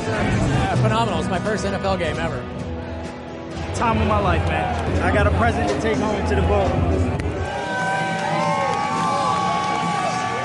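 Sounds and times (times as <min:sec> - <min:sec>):
NFL stadium crowd roaring and cheering before the game: 0:00.0 - 0:10.4
speech: 0:00.1 - 0:02.6, 0:03.8 - 0:07.2
whoops and shouts from the crowd: 0:07.4 - 0:10.4.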